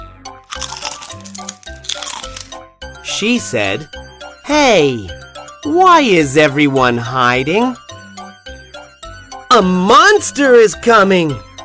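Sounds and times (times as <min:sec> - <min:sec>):
crisp crunchy chewing on a leaf: 0:00.5 - 0:02.5
speech: 0:03.1 - 0:07.8, 0:09.6 - 0:11.5.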